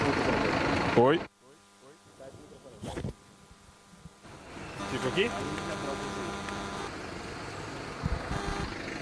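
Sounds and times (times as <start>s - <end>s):
steady street traffic rumble of passing vehicles: 0.0s - 1.1s, 4.3s - 9.0s
speech: 1.0s - 1.3s, 4.9s - 6.2s.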